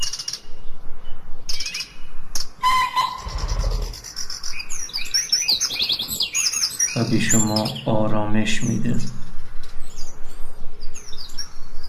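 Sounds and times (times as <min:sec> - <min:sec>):
birds singing and chirping: 0:00.0 - 0:11.8
low rumble: 0:03.2 - 0:04.4
speech: 0:07.1 - 0:09.2.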